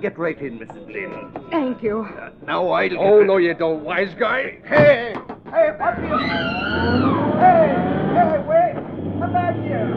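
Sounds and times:
speech: 0:00.0 - 0:08.4
taxi cab engine rumble pulling away from the curb on a city street: 0:05.9 - 0:09.9.

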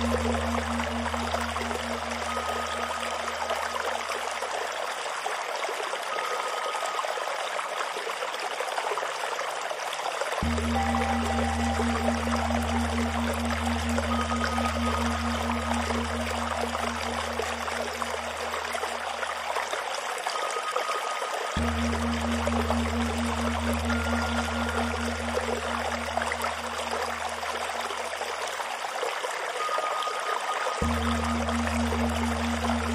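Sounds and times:
faint high Tibetan singing bowl tones: 0:00.0 - 0:04.4, 0:10.4 - 0:19.5, 0:20.4 - 0:28.3, 0:29.6 - 0:32.9
deep low drone: 0:00.0 - 0:04.5, 0:10.4 - 0:19.5, 0:21.6 - 0:28.4, 0:30.8 - 0:32.9
bamboo water fountain trickling and pouring: 0:00.0 - 0:32.9.

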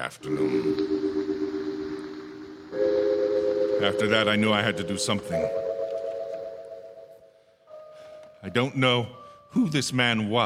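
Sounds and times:
speech: 0:00.0 - 0:01.1, 0:03.8 - 0:05.6, 0:08.4 - 0:10.4
passing train horn droning on a hot dry afternoon: 0:00.2 - 0:05.6.

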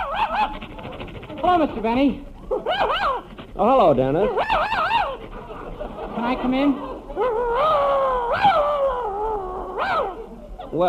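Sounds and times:
dog howling and whimpering: 0:00.0 - 0:01.5, 0:02.4 - 0:03.4, 0:04.2 - 0:06.0, 0:06.8 - 0:10.7
speech: 0:00.4 - 0:04.9, 0:06.2 - 0:07.8
laughter: 0:05.1 - 0:08.2.

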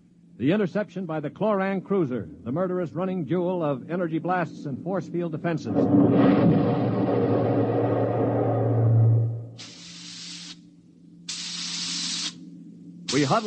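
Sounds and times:
steady low hum: 0:00.0 - 0:13.4
speech: 0:00.4 - 0:07.4, 0:13.2 - 0:13.4
deep rumbling roar: 0:05.6 - 0:09.6
hissing bursts of steam through a spaceship's steering tubes: 0:09.6 - 0:10.6, 0:11.3 - 0:12.4, 0:13.1 - 0:13.4.

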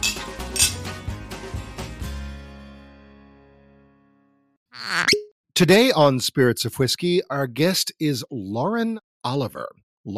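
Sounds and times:
glasses clinking in a toast: 0:00.0 - 0:00.8
speech: 0:05.6 - 0:10.1.

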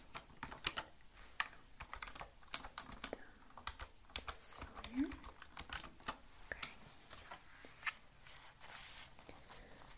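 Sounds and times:
computer keyboard typing: 0:00.0 - 0:06.8.

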